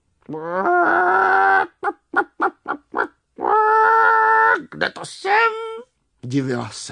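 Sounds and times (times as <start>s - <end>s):
speech: 0.3s - 1.3s, 4.8s - 5.6s, 6.3s - 6.9s
hen squawking and clucking: 0.3s - 4.8s.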